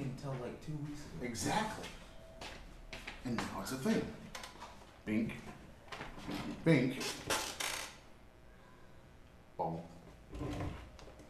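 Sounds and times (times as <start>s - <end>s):
speech: 0.0s - 2.1s, 3.2s - 4.4s, 5.0s - 5.6s, 6.3s - 7.4s, 9.6s - 10.6s
office chair height adjustment lever rattle and hiss: 6.0s - 8.0s.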